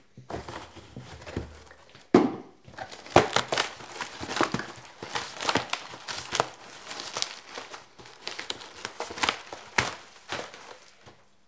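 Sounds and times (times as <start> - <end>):
pizza box being smashed: 2.7 - 11.1.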